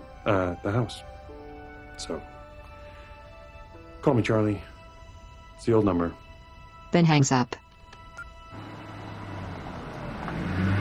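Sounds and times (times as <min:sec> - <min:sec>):
speech: 0:00.2 - 0:01.2, 0:02.0 - 0:02.3, 0:04.0 - 0:04.7, 0:05.6 - 0:06.2, 0:06.9 - 0:07.6
car engine humming as the car drives up and parks in a driveway: 0:08.5 - 0:10.8.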